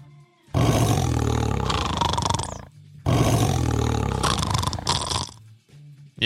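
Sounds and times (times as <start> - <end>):
tiger roaring: 0.6 - 5.4.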